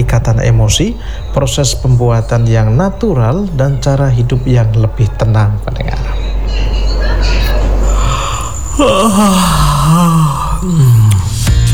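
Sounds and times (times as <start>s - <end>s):
speech: 0.1s - 6.8s, 8.8s - 11.0s
person yawning loudly: 7.8s - 11.6s.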